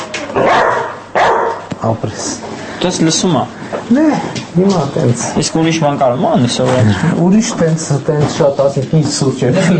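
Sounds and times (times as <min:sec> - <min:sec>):
dog barking on command: 0:00.4 - 0:01.7
speech: 0:01.9 - 0:09.7.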